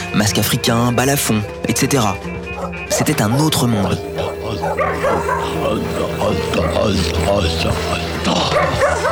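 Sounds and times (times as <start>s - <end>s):
speech: 0.2s - 9.1s
adopted bush dog barking and yipping: 2.5s - 4.0s, 4.6s - 5.6s, 8.4s - 9.1s
steady low hum: 3.4s - 9.1s.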